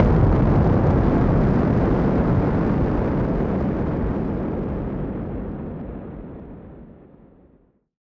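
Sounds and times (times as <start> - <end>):
noise bomb: 0.0 - 7.6.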